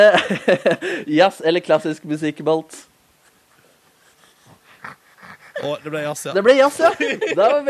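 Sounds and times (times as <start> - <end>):
laughter: 0.0 - 1.0, 5.6 - 7.6
speech: 0.0 - 2.9, 5.6 - 7.6
small dog sniffing and snorting: 3.2 - 6.4.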